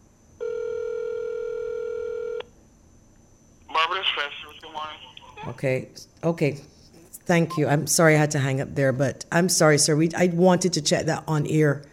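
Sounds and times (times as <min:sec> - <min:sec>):
cell phone call ringing tone, buzzy electronic tone: 0:00.4 - 0:02.4
speech: 0:03.9 - 0:11.9.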